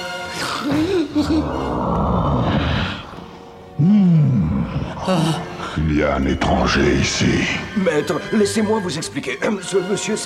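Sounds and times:
speech: 0:00.6 - 0:02.4, 0:05.0 - 0:10.2
monstrous beast roaring: 0:01.2 - 0:05.1.

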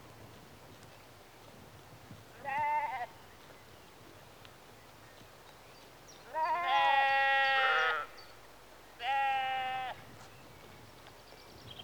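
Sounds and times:
sheep bleating outdoors in a rural setting in the early evening: 0:02.4 - 0:03.1, 0:06.3 - 0:08.1, 0:09.0 - 0:10.0.

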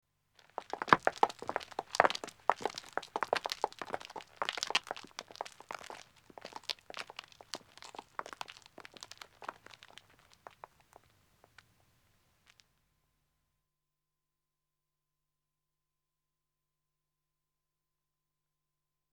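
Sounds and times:
two men walking footsteps on a country road: 0:00.4 - 0:11.1.

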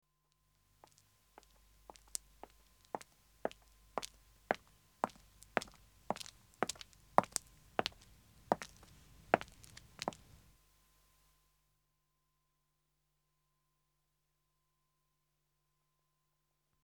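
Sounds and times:
woman's footsteps approaching on pavement: 0:00.8 - 0:10.5.

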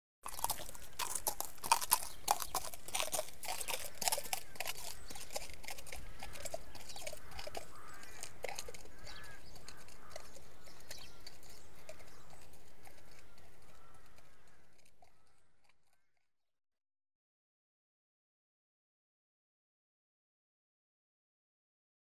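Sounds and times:
horse walking on a gravel path: 0:00.2 - 0:16.0.

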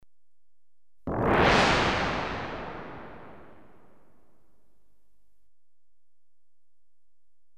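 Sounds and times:
electronically generated crash: 0:01.1 - 0:03.7.

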